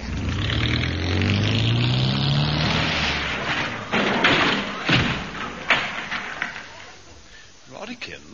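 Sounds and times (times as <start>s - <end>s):
car engine starting, revving and accelerating: 0.0s - 4.0s
car crashing into an unopened garage door: 1.3s - 7.0s
lighter clattering knocks: 3.1s - 7.2s.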